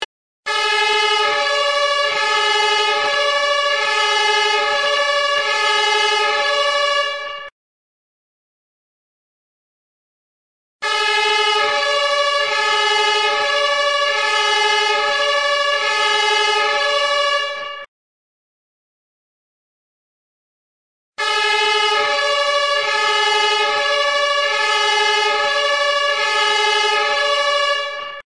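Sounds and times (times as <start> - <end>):
German fire brigade Martinshorn siren: 0.0 - 7.5, 10.8 - 17.9, 21.2 - 28.3.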